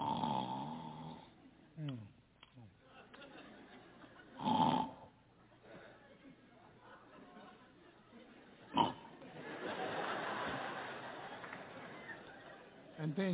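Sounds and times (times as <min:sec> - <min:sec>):
person imitating loud snoring: 0:00.0 - 0:02.1, 0:04.4 - 0:05.1, 0:08.7 - 0:09.1
laughter: 0:02.6 - 0:04.5, 0:05.4 - 0:13.3.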